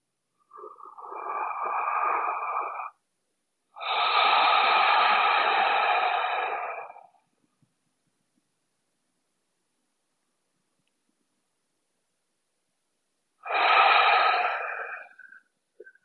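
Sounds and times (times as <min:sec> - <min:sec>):
breaths drawn through the nose smelling a scent on the wrists: 0:00.4 - 0:03.0, 0:03.8 - 0:07.2, 0:13.4 - 0:16.0.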